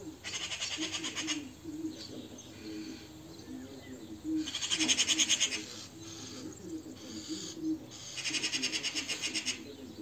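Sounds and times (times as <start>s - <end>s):
Eurasian magpie chattering: 0.1s - 1.6s, 4.4s - 9.7s.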